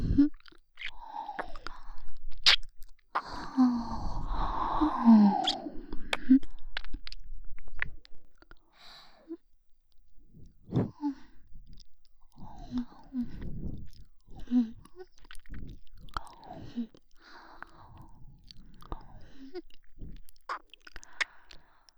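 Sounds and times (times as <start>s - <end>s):
ASMR mouth sounds sucking and nibbling on an ear: 0.0s - 3.5s, 4.1s - 8.6s, 11.6s - 17.0s, 18.4s - 21.6s.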